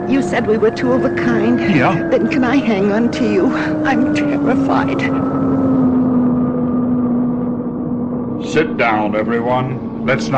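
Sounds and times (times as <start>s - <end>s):
loud engine drone with a strong low hum: 0.0s - 10.3s
speech: 0.1s - 5.4s, 8.4s - 10.3s.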